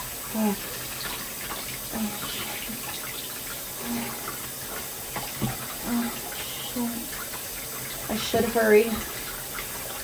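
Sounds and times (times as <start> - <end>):
shower water running: 0.0 - 10.0
speech: 0.3 - 0.8, 8.3 - 9.2.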